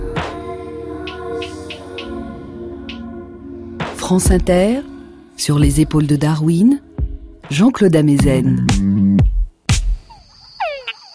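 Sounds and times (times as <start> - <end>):
speech: 4.1 - 6.9, 7.5 - 9.0
Túngara frog male courtship call with descending whine and chucks: 10.0 - 11.1.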